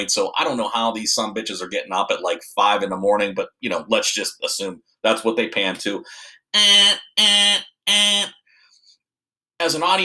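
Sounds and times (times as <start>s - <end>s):
speech: 0.0s - 8.4s, 9.6s - 10.0s
alarm clock buzzing: 6.6s - 8.3s.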